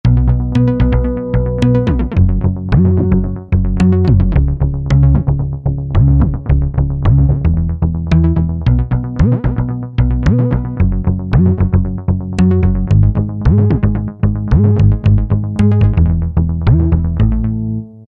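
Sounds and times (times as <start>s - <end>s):
house synth bass: 0.0s - 18.0s.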